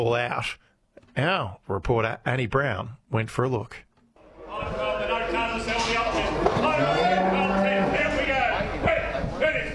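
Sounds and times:
speech: 0.0 - 3.9
indistinct voices: 4.2 - 9.7
cattle lowing in sale yard pens: 6.6 - 8.2.

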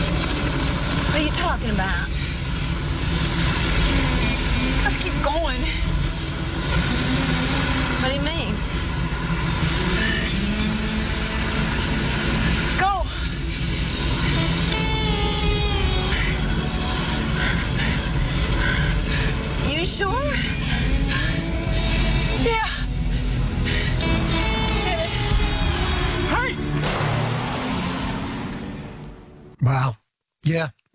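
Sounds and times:
roaring car engine revving: 0.0 - 22.4, 23.1 - 29.5
speech: 1.2 - 2.2, 5.0 - 6.0, 8.0 - 8.8, 29.6 - 30.8.

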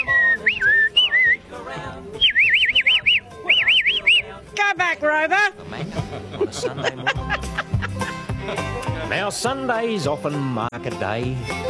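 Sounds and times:
loud whistling to call cattle: 0.0 - 1.4, 2.2 - 4.3
speech: 5.2 - 7.2, 9.1 - 11.6
laughter: 5.6 - 9.2.

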